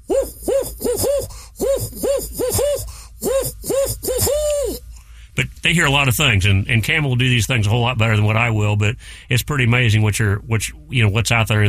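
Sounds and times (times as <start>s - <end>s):
person imitating barred owl hooting: 0.0s - 4.9s
speech: 5.7s - 11.6s.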